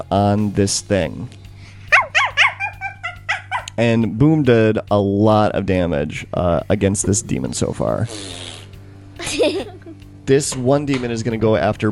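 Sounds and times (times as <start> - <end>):
speech: 0.0 - 1.4, 3.8 - 8.5, 9.3 - 9.7, 10.3 - 11.9
dog barking and yapping: 1.9 - 3.7
laughter: 9.2 - 10.0.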